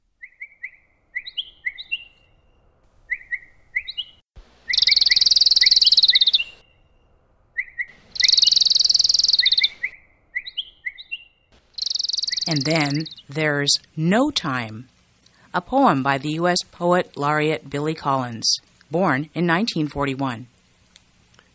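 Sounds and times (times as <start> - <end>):
small bird chirping and whistling: 0.2 - 2.3, 3.1 - 6.8, 7.6 - 13.2
loud buzzy bird trilling: 3.1 - 6.7, 7.6 - 13.3
speech: 12.5 - 15.0, 15.6 - 20.5.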